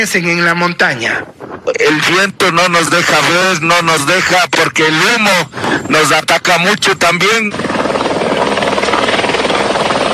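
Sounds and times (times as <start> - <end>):
speech: 0.0 - 8.0
police water-tanker helicopter rotor thudding while fighting a wildfire: 3.7 - 10.1.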